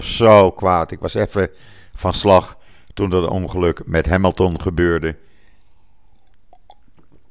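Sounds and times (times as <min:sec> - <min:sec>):
speech: 0:00.0 - 0:05.3
wet mouth clicks from sipping water: 0:04.6 - 0:07.3
soft swallow of water: 0:05.2 - 0:07.3.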